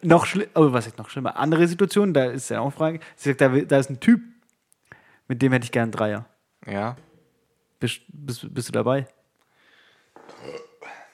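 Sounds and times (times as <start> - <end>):
speech: 0.0 - 4.3, 5.3 - 7.1, 7.8 - 9.2, 10.4 - 11.0
loud drawn-out gurgling burp: 10.2 - 11.1.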